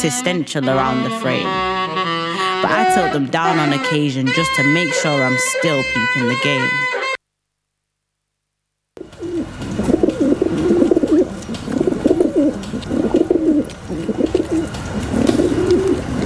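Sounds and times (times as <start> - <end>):
speech: 0.0 - 2.0, 2.6 - 7.0
feral pigeons cooing: 9.0 - 16.2.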